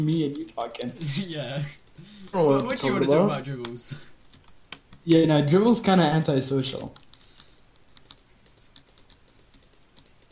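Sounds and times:
computer mouse clicking: 0.0s - 1.0s, 3.6s - 5.2s, 6.7s - 10.3s
computer keyboard typing: 0.0s - 2.4s, 3.6s - 5.2s, 6.8s - 10.3s
speech: 0.0s - 4.1s, 5.0s - 7.0s
faint hiss: 0.0s - 10.3s.

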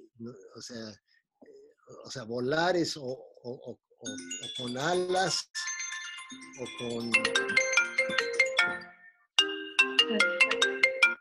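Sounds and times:
speech: 0.2s - 1.1s, 1.9s - 5.7s, 6.3s - 8.8s, 10.1s - 10.4s
mobile phone ringtone with bright bouncy melody: 5.6s - 11.1s.

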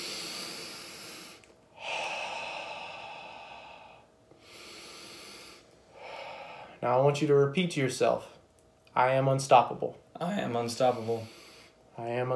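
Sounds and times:
breathy exhale blown out steadily: 0.0s - 6.8s, 10.8s - 11.8s
slow deep breathing in through the nose and out through the mouth: 0.0s - 6.8s
speech: 6.8s - 8.4s, 9.0s - 11.4s, 12.0s - 12.3s.

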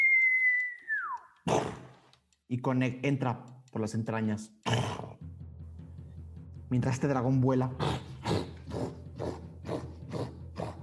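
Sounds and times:
person whistling imitating an arrow in flight: 0.0s - 1.4s
speech: 2.5s - 5.0s, 6.7s - 8.5s.

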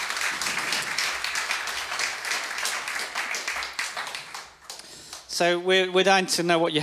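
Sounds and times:
crowd at a church clapping: 0.0s - 5.4s
speech: 5.4s - 6.8s.

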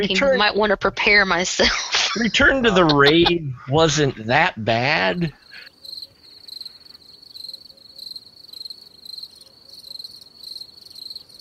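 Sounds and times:
laughter: 0.0s - 0.7s, 1.4s - 5.7s
speech: 0.0s - 5.4s
chorus of crickets chirping in shrill pulsing bursts: 5.0s - 11.3s.

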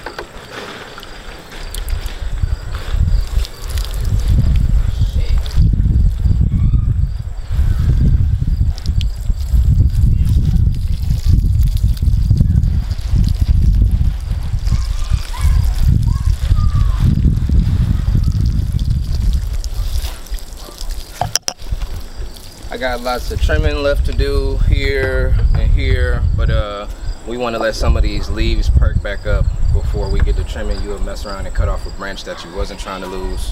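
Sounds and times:
water pouring from a pail onto plants and soil: 0.3s - 6.4s, 7.4s - 24.5s
speech: 22.8s - 33.5s.

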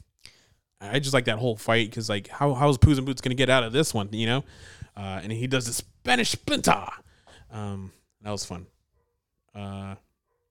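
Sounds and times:
speech: 0.8s - 8.8s, 9.5s - 10.0s
dog barking: 9.0s - 9.3s, 10.2s - 10.5s.

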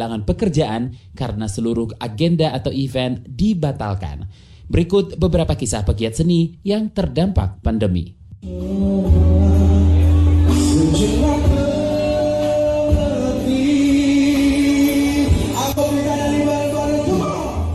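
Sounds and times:
speech: 0.0s - 9.2s
faint crowd noise in a cafe: 8.4s - 17.7s
full instrumental backing in a cafe: 8.4s - 17.7s
singer performing live in a cafe: 8.4s - 17.7s.

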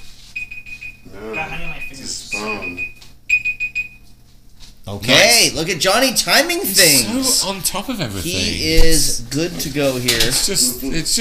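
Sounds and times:
shrill fire alarm beeping: 0.4s - 4.1s
speech: 1.1s - 3.0s, 4.8s - 11.2s.

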